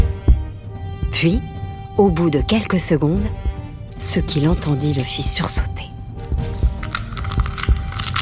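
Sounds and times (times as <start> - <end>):
speech: 1.2 - 5.9
dinosaur egg cracking open as a baby dinosaur hatches: 6.2 - 8.2.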